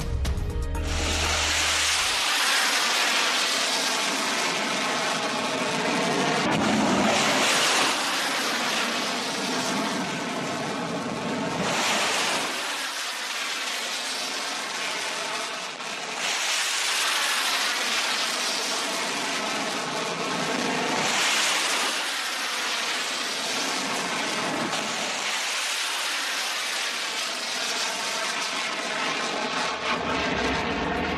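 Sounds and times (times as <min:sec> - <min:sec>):
sea wind: 0:00.2 - 0:31.1
cruise missiles launching from a ship in a salvo: 0:00.8 - 0:31.1.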